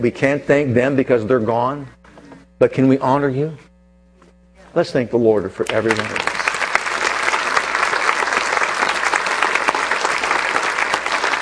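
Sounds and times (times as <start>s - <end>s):
speech: 0.0s - 2.0s, 2.6s - 3.7s, 4.7s - 6.3s
large audience applauding veterans: 5.6s - 11.3s.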